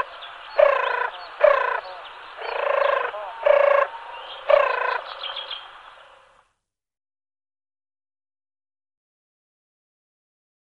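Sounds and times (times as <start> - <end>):
turtle dove purring: 0.6 - 5.1.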